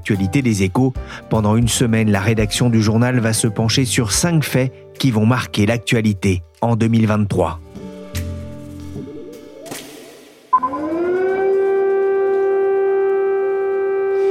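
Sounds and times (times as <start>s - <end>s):
speech: 0.0s - 7.7s
air raid sirens wailing across a city: 10.6s - 14.2s.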